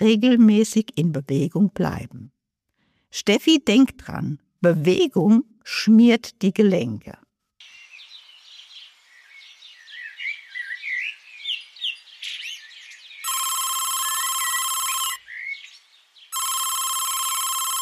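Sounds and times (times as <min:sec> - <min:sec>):
speech: 0:00.0 - 0:02.4, 0:03.1 - 0:07.2
birdsong chirping: 0:07.6 - 0:16.4
telephone ringing with an incoming call: 0:13.2 - 0:15.2, 0:16.4 - 0:17.8.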